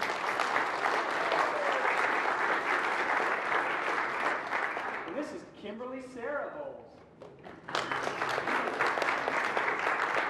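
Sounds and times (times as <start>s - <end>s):
crowd clapping steadily: 0.0s - 5.3s, 7.3s - 10.2s.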